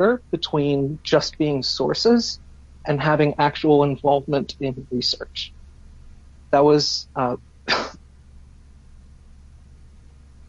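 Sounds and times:
speech: 0.0 - 5.6, 6.5 - 8.0
low steady hum: 0.0 - 10.4
person coughing: 7.7 - 8.0.

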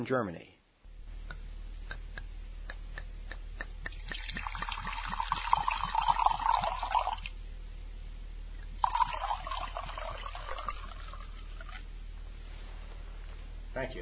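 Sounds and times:
speech: 0.0 - 0.6, 13.8 - 14.0
wine pouring into a glass: 4.0 - 7.3, 8.8 - 11.8.

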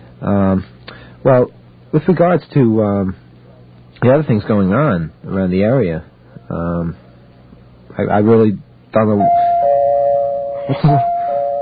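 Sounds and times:
speech: 0.2 - 3.2, 4.0 - 7.0, 8.0 - 9.4, 10.7 - 11.1
steady tone: 9.0 - 11.6
doorbell two-note chime: 9.2 - 11.6.

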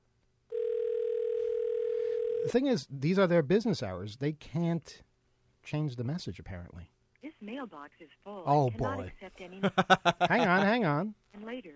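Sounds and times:
telephone ringing tone on a call to a federal building office: 0.5 - 2.6
speech: 2.4 - 11.7
laughter: 9.6 - 10.8.

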